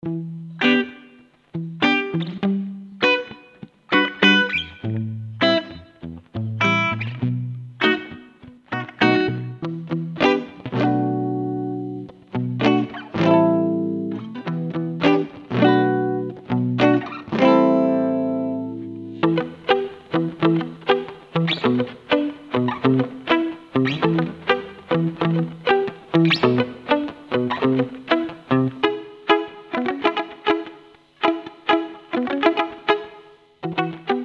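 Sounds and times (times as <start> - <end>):
muted guitars: 0.0 - 34.2.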